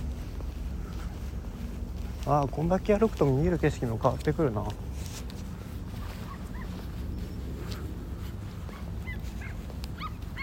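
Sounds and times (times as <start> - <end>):
outdoor wind in the streets of Toyosu: 0.0 - 10.4
traffic rumble in the streets of Toyosu: 0.0 - 10.4
speech: 2.3 - 4.9
dog barking and yipping in the streets of Toyosu: 6.2 - 6.9, 8.6 - 10.4.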